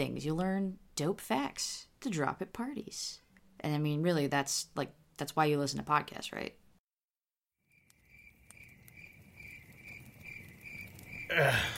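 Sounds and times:
speech: 0.0 - 6.6, 11.3 - 11.7
field crickets Gryllus pennsylvanicus chirping at night beside a campfire: 7.7 - 11.7.

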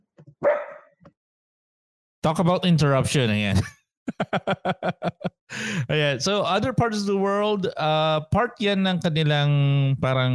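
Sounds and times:
dog yipping: 0.4 - 0.9
dog barking: 0.4 - 1.0
speech: 2.2 - 10.3
laughter: 3.5 - 6.0.

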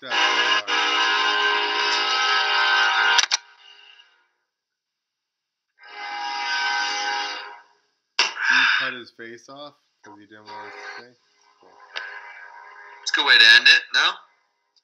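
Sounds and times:
passing train horn blasts: 0.0 - 4.1, 5.8 - 7.7, 10.5 - 11.1
speech: 8.9 - 11.7, 13.2 - 14.3.

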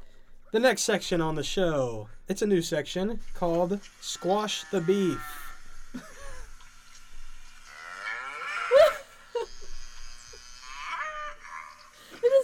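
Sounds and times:
speech: 0.5 - 6.2
cows mooing: 4.1 - 6.0, 7.4 - 12.0.

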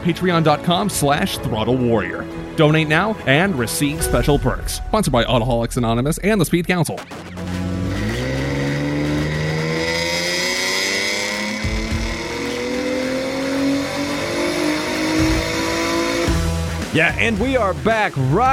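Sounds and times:
speech: 0.0 - 7.4, 16.9 - 18.5
2007 Acura TL Type S engine revving on a dyno: 5.6 - 16.9.

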